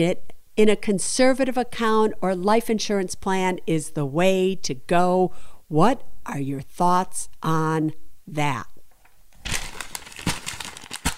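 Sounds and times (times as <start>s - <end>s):
speech: 0.0s - 8.7s
paper being crumpled: 9.4s - 11.1s.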